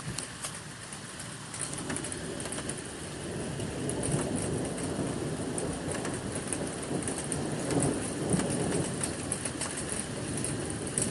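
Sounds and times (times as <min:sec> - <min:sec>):
dense rain hissing in a thunderstorm in Świnoujście: 0:00.0 - 0:11.0
low rumbling thunder in Świnoujście: 0:01.6 - 0:11.0.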